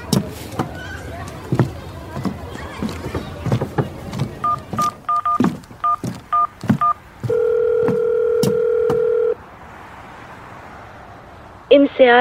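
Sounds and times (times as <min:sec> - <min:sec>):
soft clicks and thumps: 0:00.0 - 0:09.1
telephone keypad dialing tones: 0:04.4 - 0:09.4.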